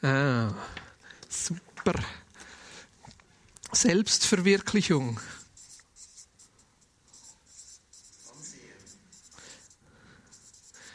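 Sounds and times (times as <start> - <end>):
speech: 0.0 - 2.2, 3.8 - 5.3
pen handwriting on paper: 5.4 - 10.9.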